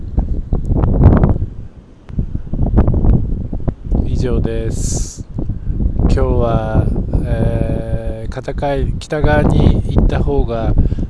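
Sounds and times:
cold north wind gusting and buffeting the microphone: 0.0s - 11.0s
speech: 4.3s - 5.2s, 6.1s - 11.0s.

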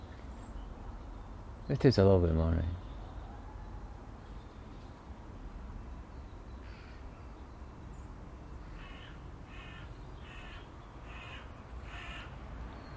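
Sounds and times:
steady outdoor hiss: 0.0s - 12.9s
speech: 1.7s - 2.8s
crows cawing: 6.6s - 7.1s, 8.6s - 12.4s.

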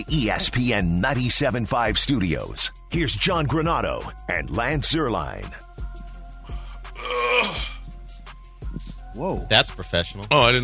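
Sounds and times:
speech: 0.0s - 5.7s, 9.2s - 10.6s
person yawning with a groaning breath: 6.9s - 7.9s.

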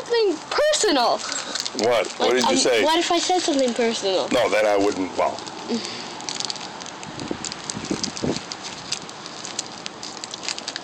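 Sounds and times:
speech: 0.1s - 6.0s
wind buffeting microphone: 7.0s - 9.1s.

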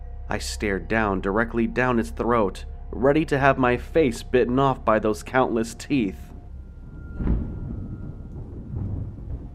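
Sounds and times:
speech: 0.3s - 6.3s
thunder crack and rumble: 6.3s - 9.5s.

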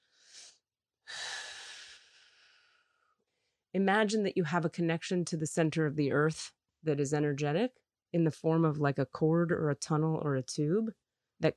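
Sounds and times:
deep breaths drawn into the low belly: 0.0s - 3.5s
speech: 3.8s - 11.5s.

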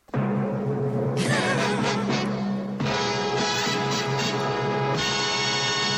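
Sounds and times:
orchestral television company logo fanfare with brassy chords: 0.2s - 5.9s.

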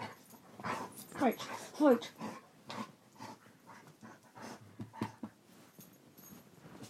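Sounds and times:
dog panting: 0.0s - 5.4s
speech: 1.2s - 2.3s.

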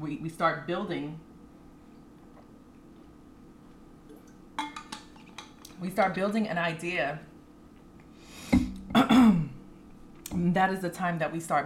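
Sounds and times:
speech: 0.0s - 1.3s, 5.8s - 7.3s, 10.4s - 11.6s
person with an irritated throat clearing throat: 8.9s - 9.6s.

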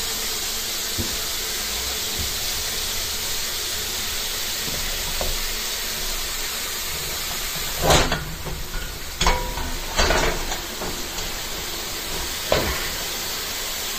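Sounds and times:
hot skillet sizzling in plain water in a plugged sink: 0.0s - 13.9s
sharp bursts of crackling steam: 0.0s - 13.9s.

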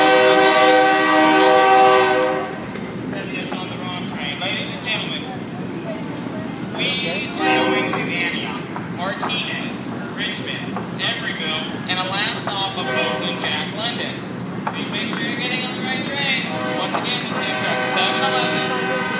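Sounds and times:
passenger train horn blaring: 0.0s - 2.8s, 6.8s - 8.5s, 12.7s - 13.8s, 16.4s - 19.1s
heavy rolling rumble of a passenger train: 0.0s - 19.1s
faint voices: 2.9s - 19.1s.

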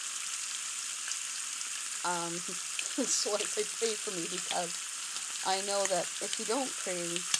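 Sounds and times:
farmhouse bacon frying in its undrained fat: 0.0s - 7.3s
speech: 2.0s - 7.3s.

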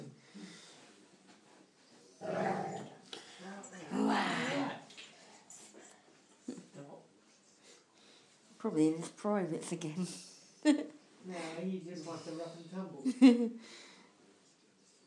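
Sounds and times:
dog growling and whimpering: 2.2s - 3.0s
speech: 8.6s - 13.9s.

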